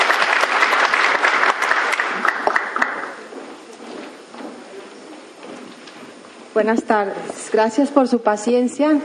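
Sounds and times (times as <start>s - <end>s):
small audience applauding: 0.0s - 3.4s
speech: 6.6s - 9.0s.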